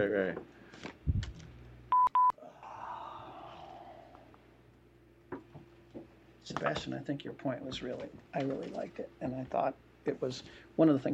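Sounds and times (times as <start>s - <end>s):
speech: 0.0s - 1.2s, 6.5s - 11.1s
telephone keypad dialing tones dialing back into a phone call: 1.9s - 2.4s.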